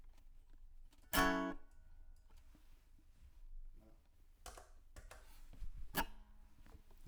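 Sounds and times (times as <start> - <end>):
guitar through a microphone: 0.9 - 2.3, 5.6 - 6.9.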